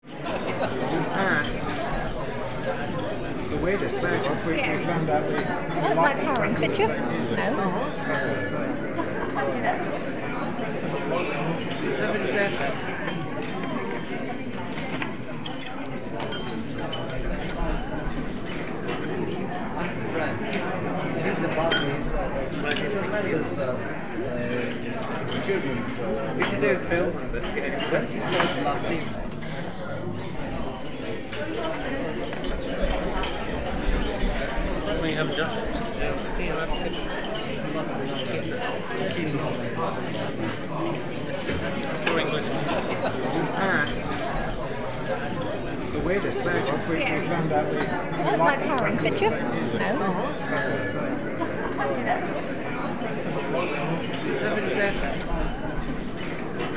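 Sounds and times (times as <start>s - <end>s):
large lunch time crowd in a restaurant: 0.0s - 56.7s.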